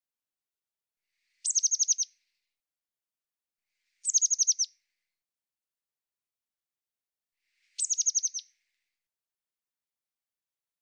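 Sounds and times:
Eurasian blue tit calling: 0:01.4 - 0:02.1, 0:04.0 - 0:04.7, 0:07.8 - 0:08.4.

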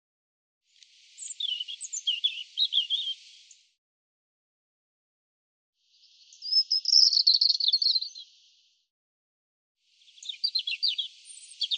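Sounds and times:
European robin singing: 0:01.0 - 0:03.6, 0:06.0 - 0:08.5, 0:10.0 - 0:11.7.

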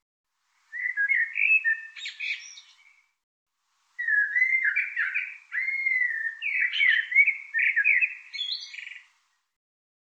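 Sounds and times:
bird song of warbled whistled phrases: 0:00.6 - 0:03.2, 0:04.0 - 0:09.3.

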